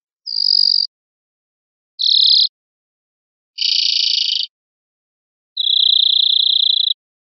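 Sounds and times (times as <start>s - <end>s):
crickets chirping: 2.0s - 2.5s, 3.6s - 4.4s, 5.6s - 7.0s.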